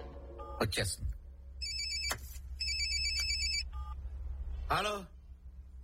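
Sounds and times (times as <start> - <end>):
speech: 0.6 - 1.2, 4.7 - 5.2
telephone ringing with bright electronic trilling: 1.6 - 4.0.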